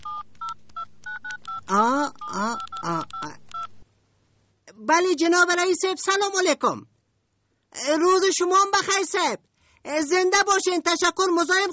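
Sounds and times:
telephone touch-tone beeps while dialing a call: 0.0 - 3.7
speech: 1.7 - 2.6, 4.9 - 6.9, 7.8 - 11.7.

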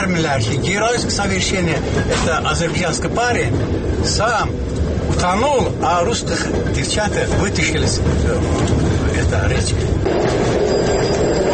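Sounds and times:
speech: 0.0 - 11.0
Moscow–Baku passenger train approaching Baku station, wheels and carriages rumbling: 0.0 - 11.5.

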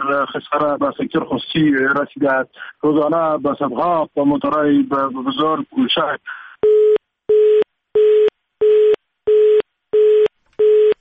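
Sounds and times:
speech: 0.0 - 6.8
telephone tone beeps after a call was cut off: 6.6 - 10.9.

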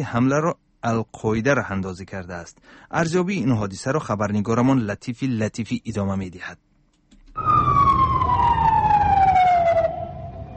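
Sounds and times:
speech: 0.0 - 6.6
emergency siren wailing: 7.3 - 10.5.

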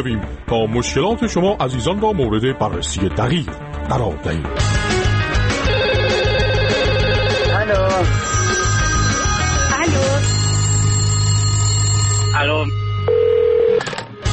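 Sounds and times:
speech: 0.0 - 5.0, 12.4 - 12.8
busy tonal musical backdrop: 0.0 - 14.3
telephone ringing: 5.6 - 14.0.

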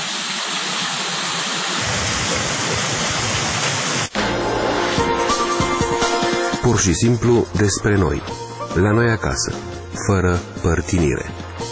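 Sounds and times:
roar of rushing water: 0.0 - 6.4
speech: 6.7 - 11.4.

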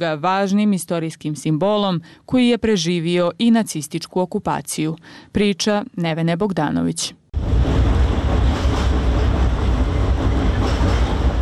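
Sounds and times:
speech: 0.0 - 7.2
tram rumbling across a bridge: 7.4 - 11.4.

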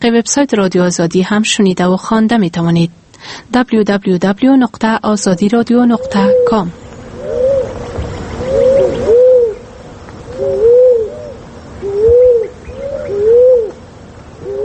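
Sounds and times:
speech: 0.0 - 6.8
turtle dove cooing: 5.2 - 14.6.

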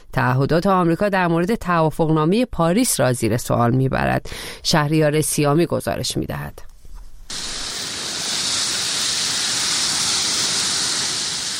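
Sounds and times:
speech: 0.2 - 6.7
dry grass burning in a wildfire: 7.3 - 11.5.

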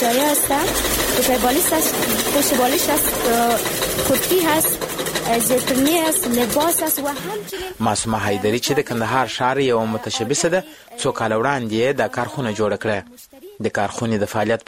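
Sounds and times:
sewing machines running in a tailoring workshop: 0.0 - 10.9
speech: 0.0 - 14.6.

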